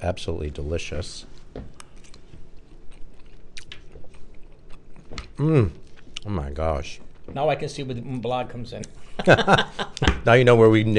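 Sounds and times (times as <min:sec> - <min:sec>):
speech: 0:00.0 - 0:01.8, 0:05.4 - 0:10.9
person chewing a bite of shepherd's pie stuffed potato: 0:01.4 - 0:06.3
laughter: 0:09.1 - 0:10.2.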